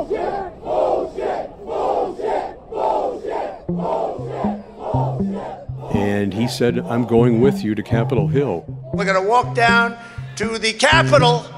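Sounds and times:
large crowd cheering and chanting at a rally: 0.0s - 11.5s
tonal horn-like notes: 3.7s - 11.5s
speech: 6.4s - 11.5s.

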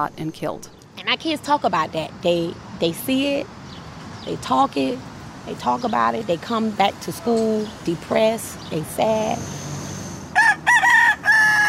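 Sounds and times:
speech: 0.0s - 3.6s, 4.2s - 9.6s
rooster crowing on a sidewalk: 10.3s - 11.6s.

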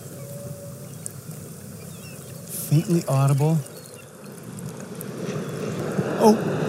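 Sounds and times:
humpback whale feeding call: 0.0s - 1.1s
speech: 2.7s - 3.7s, 6.2s - 6.6s.

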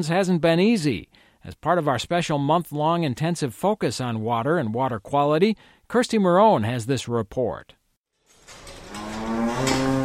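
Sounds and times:
speech: 0.0s - 7.8s
dairy cow mooing on a farm near the North Fork of the Crow River: 8.8s - 10.0s.

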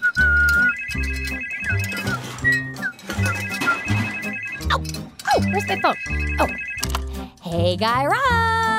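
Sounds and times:
telephone with loud melodic electronic ringtone: 0.2s - 7.1s
speech: 5.7s - 6.5s, 7.7s - 8.7s.

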